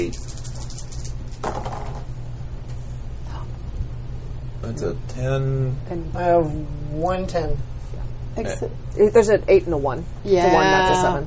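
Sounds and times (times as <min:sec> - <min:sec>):
speech: 0:00.0 - 0:00.3, 0:04.7 - 0:07.7, 0:08.4 - 0:11.2
low hum: 0:00.0 - 0:11.2
dice rolled onto a table for a tabletop role-playing game perception check: 0:00.1 - 0:02.1.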